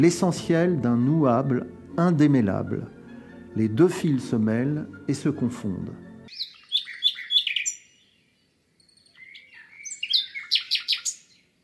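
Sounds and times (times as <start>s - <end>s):
speech: 0.0s - 3.0s, 3.6s - 6.0s
bird singing quick high trills and chirps: 6.3s - 11.6s.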